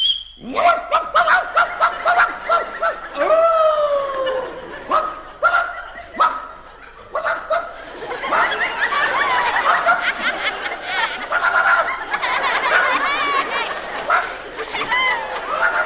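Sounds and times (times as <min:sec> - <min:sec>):
man imitating a drawn-out whining dog howl: 0:00.4 - 0:04.6
man imitating dog barks: 0:00.4 - 0:07.8, 0:11.3 - 0:12.0
faint laughter: 0:01.5 - 0:15.8.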